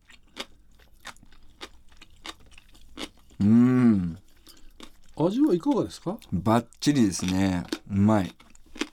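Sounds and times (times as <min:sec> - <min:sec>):
canned pickled daikon radish being chewed: 0:00.0 - 0:08.9
person humming approvingly: 0:03.4 - 0:04.2
speech: 0:03.4 - 0:04.2, 0:05.2 - 0:08.4.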